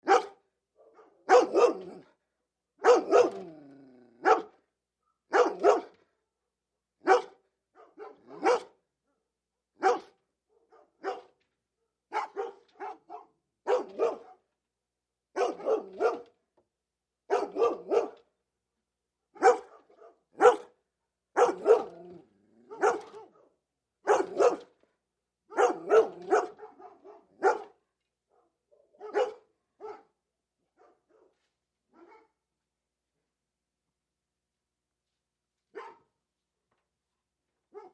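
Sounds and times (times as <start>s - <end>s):
Bernese dogs barking: 0.0s - 2.0s, 2.8s - 3.6s, 4.2s - 4.6s, 5.3s - 5.9s, 7.1s - 8.8s, 9.8s - 11.4s, 12.1s - 14.4s, 15.4s - 16.3s, 17.3s - 18.2s, 19.4s - 20.8s, 21.4s - 22.1s, 22.7s - 23.5s, 24.1s - 24.7s, 25.5s - 27.8s, 28.8s - 30.1s.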